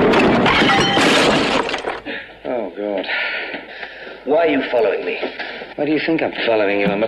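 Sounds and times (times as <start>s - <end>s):
ceramic bust smashing on the floor: 0.2s - 1.9s
speech: 4.4s - 7.0s.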